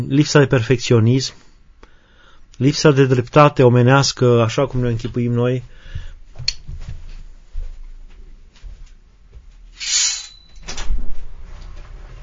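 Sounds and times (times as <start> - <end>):
speech: 0.0 - 1.4, 2.6 - 5.8
door being opened with a rubbing sliding scrape: 9.8 - 12.2.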